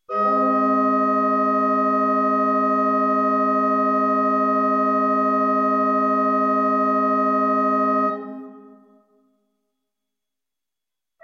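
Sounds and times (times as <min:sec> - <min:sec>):
open and stop diapason organ pipes playing an A flat chord: 0:00.1 - 0:08.8.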